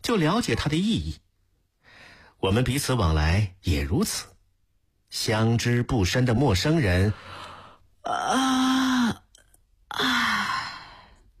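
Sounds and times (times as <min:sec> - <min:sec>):
speech: 0:00.1 - 0:01.2, 0:02.4 - 0:04.3, 0:05.1 - 0:07.4, 0:08.0 - 0:08.6
big drawn-out yawn: 0:08.0 - 0:09.3, 0:09.9 - 0:11.1.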